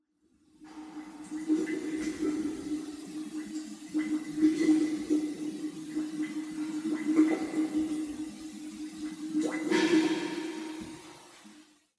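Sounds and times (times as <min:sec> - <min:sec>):
wine fermentation: 0:00.7 - 0:11.1.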